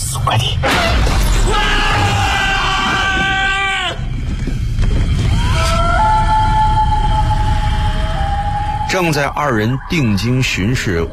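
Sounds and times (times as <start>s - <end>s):
speech: 0.2s - 2.2s, 9.0s - 11.1s
two people screaming in fright: 1.3s - 4.1s, 5.2s - 9.0s.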